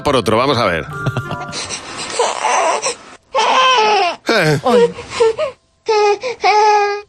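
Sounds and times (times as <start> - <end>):
speech: 0.0 - 3.0, 3.8 - 7.0
baby crying in wailing bursts: 2.1 - 7.0.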